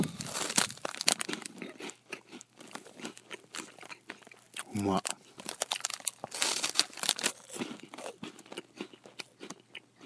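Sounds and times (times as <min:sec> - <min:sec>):
plastic wrapper crinkling: 0:00.0 - 0:01.6, 0:05.0 - 0:07.5
crunching of a corn-potage-flavored Umaibo corn puff snack being eaten: 0:00.0 - 0:10.0
speech: 0:04.8 - 0:05.1.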